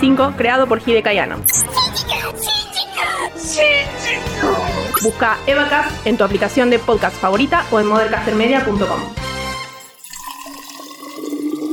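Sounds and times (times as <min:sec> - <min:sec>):
speech: 0:00.0 - 0:09.2
water poured into a mate gourd with fresh yerba: 0:09.8 - 0:11.7.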